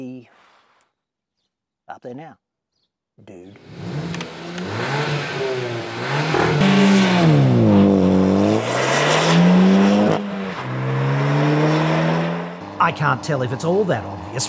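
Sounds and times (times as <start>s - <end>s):
speech: 1.9s - 2.4s, 3.2s - 3.9s, 12.8s - 14.4s
car engine revving hard on a race track: 3.6s - 14.4s.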